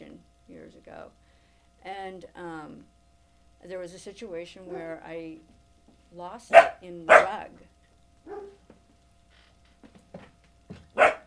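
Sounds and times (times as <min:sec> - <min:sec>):
speech: 0:00.9 - 0:01.2, 0:01.8 - 0:03.0, 0:03.6 - 0:08.5
dogs barking: 0:04.7 - 0:05.0, 0:06.5 - 0:07.4, 0:08.2 - 0:08.6, 0:10.9 - 0:11.2.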